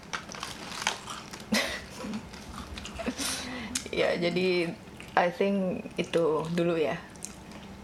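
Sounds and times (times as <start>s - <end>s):
crunching and chewing peanuts: 0.0s - 3.9s, 6.0s - 7.8s
speech: 4.0s - 7.1s.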